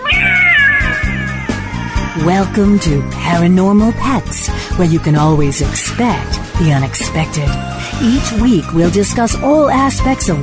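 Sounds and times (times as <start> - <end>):
cat meowing long and falling in pitch: 0.0 - 3.8
speech: 2.2 - 10.4.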